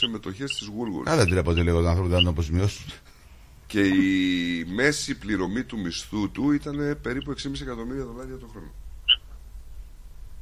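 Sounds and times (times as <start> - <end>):
high-pitched insect chirp: 0.0 - 2.3
speech: 0.0 - 3.1, 3.7 - 8.8
low steady hum: 0.0 - 10.3.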